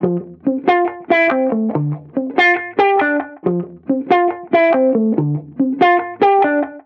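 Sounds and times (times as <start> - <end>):
reggae guitar loop at 140 BPM in F major: 0.0 - 6.8.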